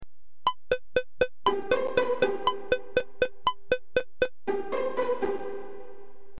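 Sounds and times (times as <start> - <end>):
guitar playing quavers in four-eight time: 0.5 - 4.5.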